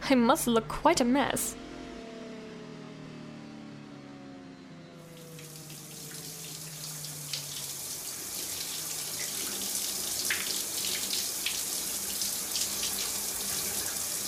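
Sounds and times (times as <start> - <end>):
speech: 0.1 - 1.6
shower water running: 5.1 - 14.2.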